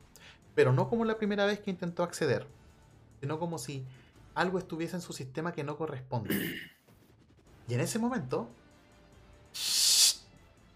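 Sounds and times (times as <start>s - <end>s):
speech: 0.6s - 2.6s, 3.2s - 6.8s, 7.7s - 8.6s
sharp burst of air hissing: 9.6s - 10.2s.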